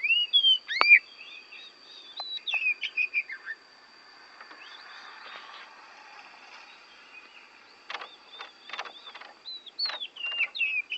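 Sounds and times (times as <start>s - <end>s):
Oriental magpie-robin from Borneo warbling clear whistles: 0.0s - 3.6s, 8.3s - 10.9s
constant high whine: 0.0s - 10.9s
quiet scratchy sounds: 2.2s - 10.9s.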